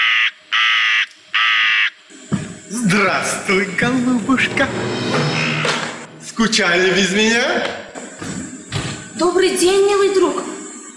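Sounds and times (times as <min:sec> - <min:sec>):
crows cawing: 0:00.0 - 0:02.0
speech: 0:02.9 - 0:05.5, 0:06.4 - 0:08.3, 0:09.2 - 0:10.5.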